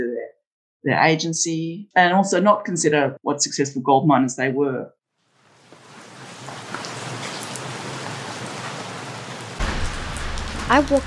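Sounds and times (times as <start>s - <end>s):
speech: 0.8s - 5.0s, 10.7s - 11.0s
steady rain pouring on a street: 5.4s - 11.0s.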